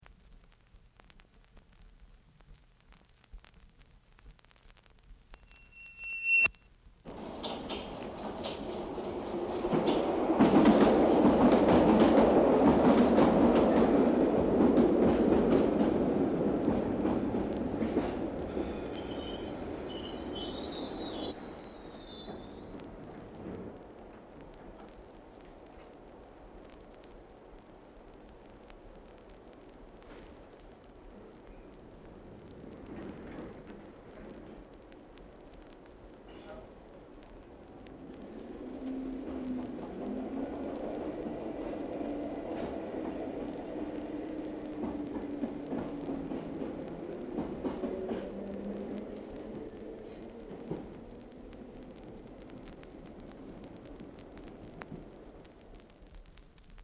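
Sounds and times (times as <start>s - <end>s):
above-ground Tube train arriving and departing: 7.1s - 26.4s, 36.2s - 55.7s.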